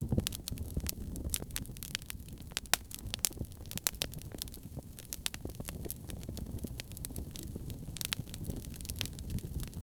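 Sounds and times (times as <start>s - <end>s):
campfire crackling: 0.0s - 9.8s.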